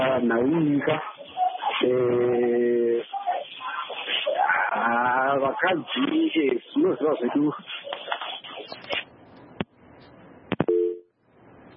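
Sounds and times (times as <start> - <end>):
speech: 0.0 - 1.2, 1.8 - 2.4, 5.5 - 7.9
talk: 0.0 - 9.1
phone tone after a dropped call: 10.7 - 11.1.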